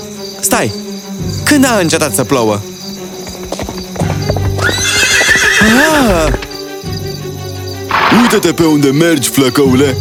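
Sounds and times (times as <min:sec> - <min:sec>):
speech: 0:00.4 - 0:02.7, 0:05.6 - 0:06.5, 0:08.2 - 0:10.0
horse hooves clip-clopping on a street: 0:02.9 - 0:06.6
horse on a street whinnying: 0:04.1 - 0:06.5, 0:07.9 - 0:08.4.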